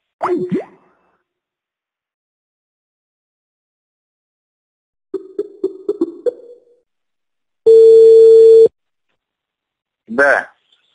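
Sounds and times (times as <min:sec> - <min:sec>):
speech: 0:00.3 - 0:00.6, 0:10.1 - 0:10.5
telephone ringing with short electronic chirps: 0:07.7 - 0:08.7.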